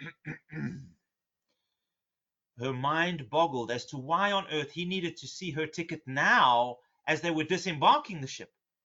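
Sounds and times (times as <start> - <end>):
man clearing his throat: 0.0 - 1.0
speech: 2.6 - 8.6.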